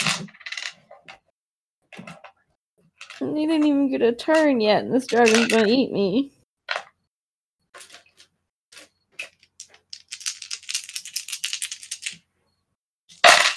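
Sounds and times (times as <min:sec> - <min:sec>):
speech: 0:03.2 - 0:06.4
handful of dice clattering onto a hard surface: 0:09.2 - 0:12.2, 0:13.2 - 0:13.5.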